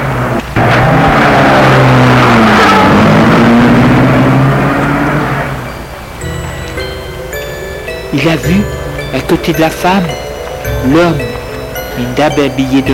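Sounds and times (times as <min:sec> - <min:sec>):
car engine accelerating past: 0:00.0 - 0:07.6
speech: 0:08.2 - 0:10.2, 0:10.8 - 0:11.3, 0:12.0 - 0:12.9.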